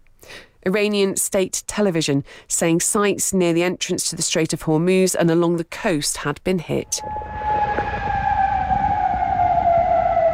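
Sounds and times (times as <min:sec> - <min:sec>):
speech: 0:00.6 - 0:07.5
air raid siren wailing: 0:06.8 - 0:10.3
rumbling background: 0:06.8 - 0:10.3.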